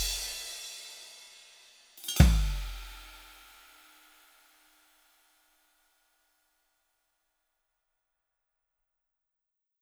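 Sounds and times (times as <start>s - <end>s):
dry clean drum stick hits: 2.0s - 3.2s.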